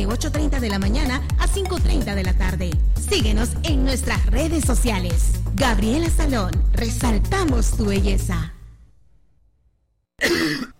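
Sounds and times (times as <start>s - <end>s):
speech: 0.0s - 8.6s
person coughing in a cough remedy advert: 10.2s - 10.7s.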